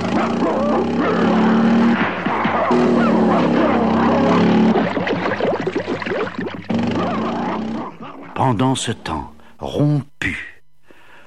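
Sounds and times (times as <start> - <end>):
dogs barking in pursuit: 0.0 - 8.5
motorcycle engine droning while pulling away: 0.0 - 8.5
speech: 8.5 - 10.5.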